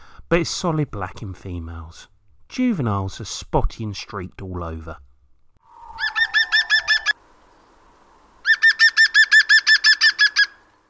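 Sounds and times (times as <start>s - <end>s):
speech: 0.3s - 5.1s
thin descending whistle: 5.6s - 7.2s
woodpecker with red rump and red crown giving loud laughing song: 5.9s - 7.2s, 8.4s - 10.6s.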